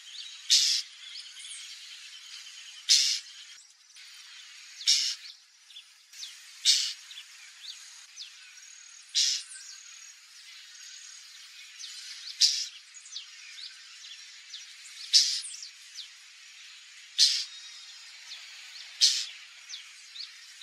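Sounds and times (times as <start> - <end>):
white-banded mockingbird song of thin whistled and slurred notes: 0.0 - 16.2, 17.1 - 20.6.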